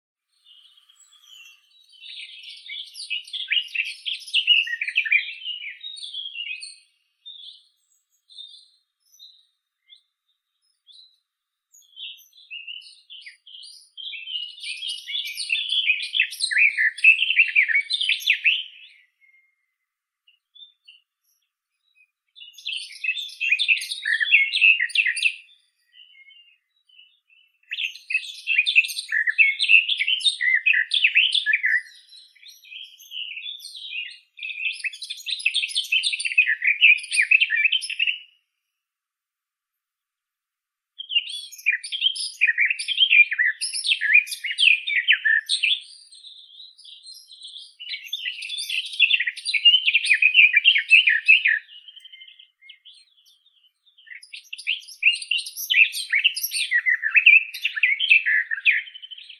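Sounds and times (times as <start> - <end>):
Sylvia borin garden warbler: 0.3 - 19.6, 20.3 - 38.4, 41.0 - 59.3.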